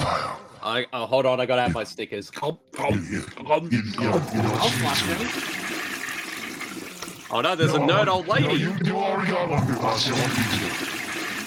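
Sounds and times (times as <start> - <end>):
speech: 0.6 - 5.6, 7.3 - 11.0
toilet flushing: 4.0 - 11.4.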